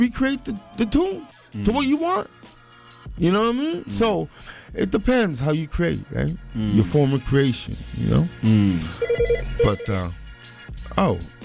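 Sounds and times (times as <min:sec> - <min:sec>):
speech: 0:00.0 - 0:02.4, 0:03.2 - 0:10.2, 0:11.0 - 0:11.4
telephone ringing with an incoming call: 0:08.9 - 0:10.1.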